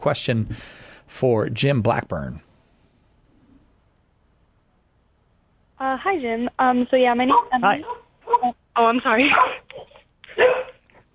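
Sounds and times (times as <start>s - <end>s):
speech: 0.0s - 2.5s, 5.9s - 10.7s
dog barking over a phone line: 7.3s - 8.6s, 9.3s - 10.8s.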